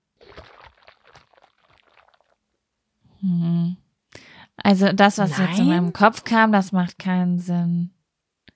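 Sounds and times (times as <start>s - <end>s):
water sloshing and gurgling in a hot water bottle: 0.2s - 2.4s
speech: 4.7s - 8.0s.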